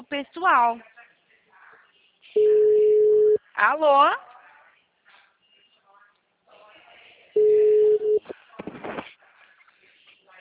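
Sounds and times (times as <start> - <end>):
speech: 0.2 - 0.9, 3.6 - 4.3
telephone busy tone after a dropped call: 2.4 - 3.4, 7.4 - 8.2.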